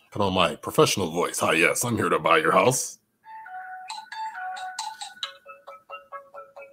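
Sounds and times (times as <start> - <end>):
speech: 0.1 - 3.0
phone electronic melodic beeps on an outgoing call: 3.3 - 6.2.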